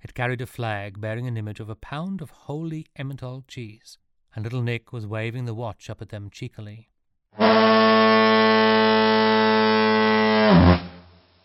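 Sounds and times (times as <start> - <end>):
speech: 0.2 - 8.2, 10.5 - 10.8
deep alphorn long loud steady blast: 7.4 - 11.0.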